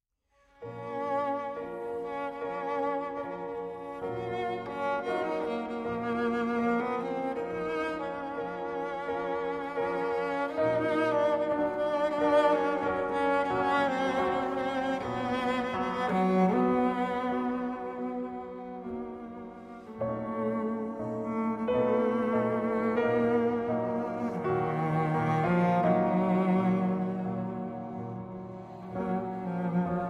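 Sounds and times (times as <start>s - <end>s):
cello playing an etude in B flat minor: 0.3s - 30.0s
piano accompanying an etude in B flat minor: 0.3s - 30.0s.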